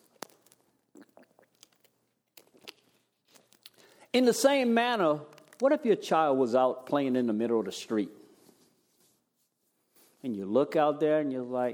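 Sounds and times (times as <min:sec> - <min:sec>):
person sipping water: 0:00.0 - 0:04.2
wet mouth clicks and small gulps: 0:00.0 - 0:04.2, 0:05.3 - 0:05.7
speech: 0:04.1 - 0:08.2, 0:10.2 - 0:11.7.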